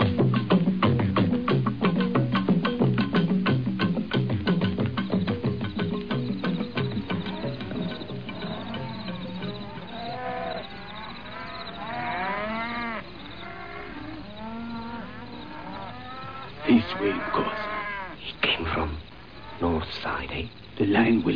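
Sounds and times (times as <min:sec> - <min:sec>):
cattle lowing in a kraal: 0:00.0 - 0:20.8
insects chirping: 0:00.0 - 0:21.3.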